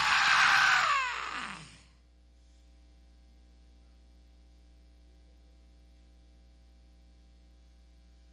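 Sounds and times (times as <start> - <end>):
preacher screaming during a sermon: 0.0 - 1.8.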